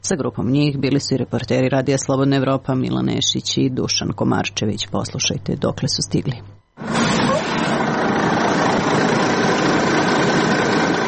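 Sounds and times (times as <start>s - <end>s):
speech: 0.1s - 6.6s
bus engine idling: 7.7s - 11.0s.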